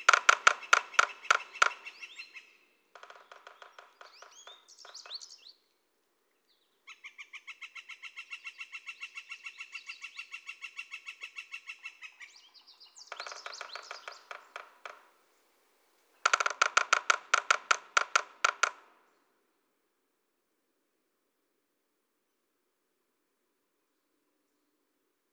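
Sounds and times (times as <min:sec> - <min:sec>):
Northern Flicker long even run of rapid repeated notes: 0:00.0 - 0:05.5
Northern Flicker loud clipped notes and chatter: 0:00.0 - 0:05.7, 0:06.8 - 0:15.2, 0:16.2 - 0:19.2.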